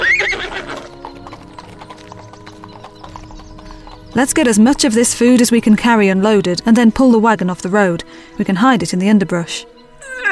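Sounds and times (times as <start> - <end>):
mare whinnying: 0.0 - 2.4, 10.0 - 10.3
clip-clop of mare's hooves trotting away: 0.0 - 6.4
speech: 4.2 - 9.8.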